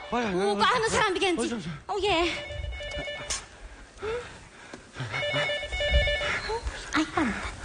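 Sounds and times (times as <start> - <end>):
speech: 0.1 - 3.4, 4.0 - 4.4
phone electronic ringtone with an incoming call: 2.2 - 3.5, 5.1 - 6.6.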